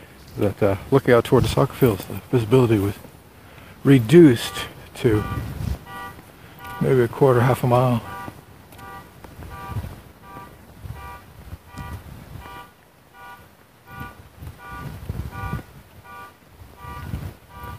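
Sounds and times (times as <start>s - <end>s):
rumbling gusty wind-like background: 0.0s - 17.7s
speech: 0.4s - 3.1s, 3.8s - 5.5s, 6.8s - 8.1s
car alarm honking: 3.9s - 17.7s.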